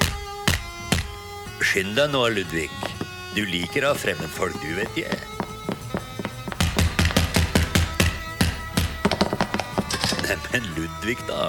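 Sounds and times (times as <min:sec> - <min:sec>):
speech: 0:01.6 - 0:05.4, 0:10.4 - 0:11.4
loud knocking on a door: 0:05.1 - 0:10.3.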